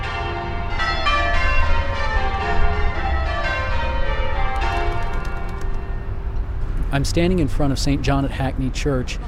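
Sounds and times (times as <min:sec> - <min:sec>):
church tower bells ringing a peal: 0:00.0 - 0:07.7
low rumble of traffic: 0:00.0 - 0:09.2
speech: 0:07.0 - 0:09.2.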